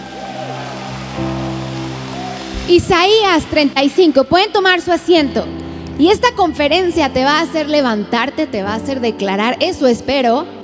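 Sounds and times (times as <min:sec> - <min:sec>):
audience applauding: 0:00.0 - 0:03.7
speech: 0:02.7 - 0:10.6.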